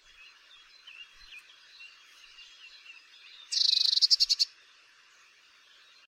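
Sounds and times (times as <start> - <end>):
Eurasian blue tit Cyanistes caeruleus churring: 3.4 - 4.5.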